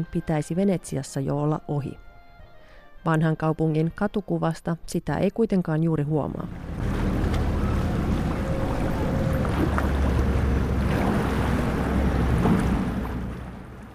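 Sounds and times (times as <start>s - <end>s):
speech: 0.0s - 2.1s, 3.0s - 6.7s
churning canal water: 6.4s - 13.9s
engines of water buses and motorboats on a canal in Venice: 6.4s - 13.9s
rolling suitcases: 6.5s - 13.9s.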